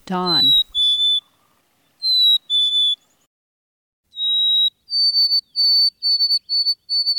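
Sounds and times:
speech: 0.1s - 0.6s
black-capped chickadee whistled hey-sweetie song: 0.3s - 1.3s, 1.9s - 3.3s, 4.1s - 7.1s.

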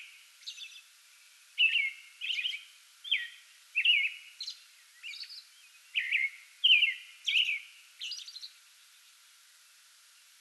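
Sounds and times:
American robin singing pre-dawn song: 0.0s - 0.9s, 1.6s - 9.2s.

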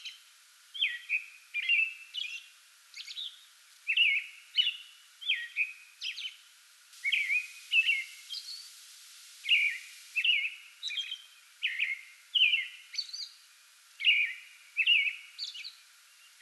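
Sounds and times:
American robin singing from a small tree before dawn: 0.8s - 6.4s, 7.0s - 8.8s, 9.4s - 13.4s, 14.0s - 16.4s.

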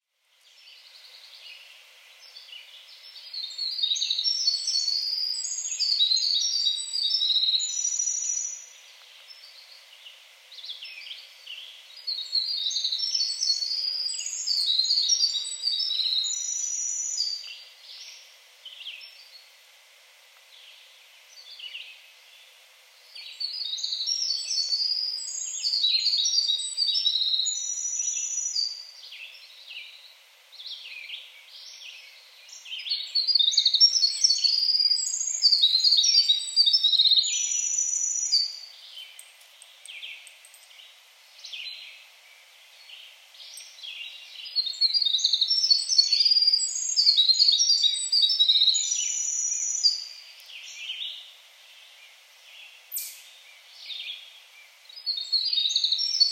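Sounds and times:
Winter Wren singing: 0.0s - 19.6s, 20.5s - 56.3s.

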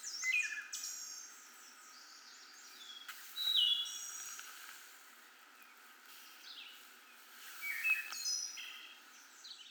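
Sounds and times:
wood thrush song: 0.0s - 4.4s, 7.6s - 9.6s.

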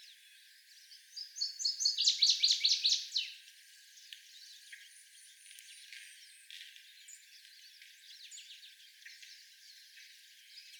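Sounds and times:
Northern waterthrush song: 1.4s - 3.3s.

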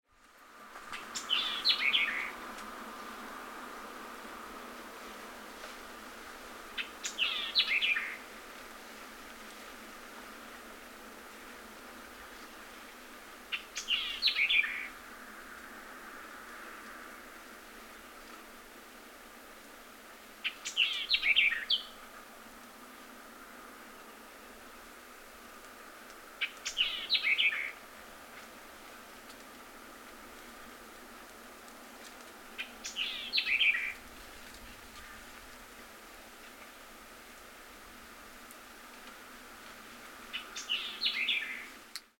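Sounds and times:
White-eyed Vireo singing: 1.0s - 2.3s, 6.8s - 8.2s, 13.5s - 14.9s, 20.4s - 22.0s, 26.4s - 27.8s, 32.6s - 34.0s, 40.3s - 41.7s.

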